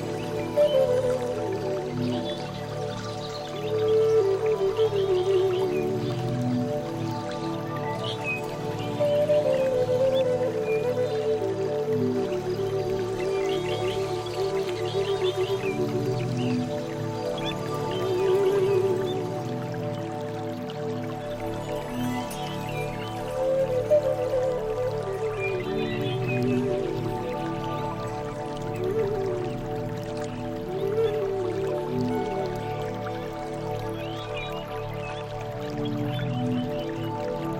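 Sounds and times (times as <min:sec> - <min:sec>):
slow wavering flute melody: 0:00.0 - 0:37.5.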